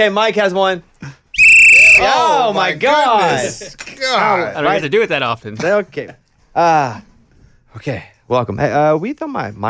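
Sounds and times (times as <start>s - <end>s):
speech: 0.0s - 1.2s, 2.0s - 7.1s, 7.7s - 9.6s
shrill whistle blast: 1.4s - 2.2s.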